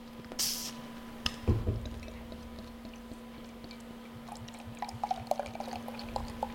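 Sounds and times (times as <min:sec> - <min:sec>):
brief knock: 0:01.5 - 0:01.9
fine crackling beer fizz: 0:01.5 - 0:06.5
light golden beer pouring from a large bottle into a glass: 0:04.2 - 0:06.5.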